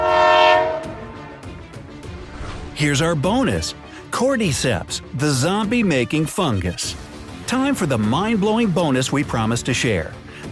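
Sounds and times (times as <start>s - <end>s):
train horn blast: 0.0s - 1.5s
speech: 2.8s - 10.4s.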